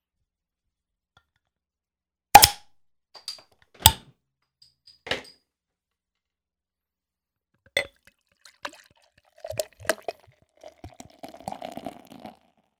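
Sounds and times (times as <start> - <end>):
clicks and knocks of an IPA beer bottle being opened: 7.7 - 8.0, 9.4 - 11.6
IPA beer gurgling and glugging into a glass: 7.8 - 12.7.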